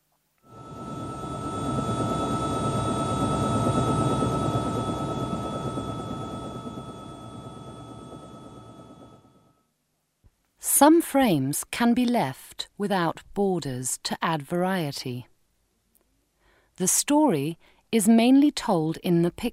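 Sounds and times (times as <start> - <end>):
helicopter flying overhead: 0.5 - 9.5
speech: 10.8 - 15.3, 16.8 - 19.5.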